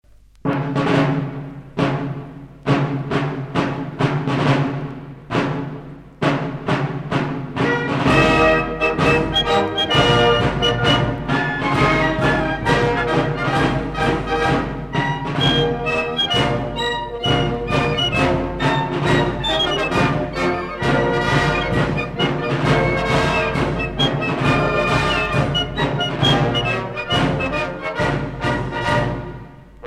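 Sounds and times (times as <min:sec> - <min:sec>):
tactical military march music: 0:00.2 - 0:29.8.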